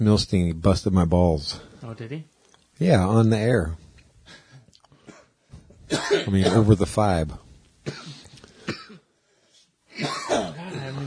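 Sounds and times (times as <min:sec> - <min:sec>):
speech: 0:00.0 - 0:04.4, 0:05.9 - 0:08.1
person coughing before a hit of weed: 0:05.0 - 0:06.8, 0:07.9 - 0:09.1, 0:09.9 - 0:11.0.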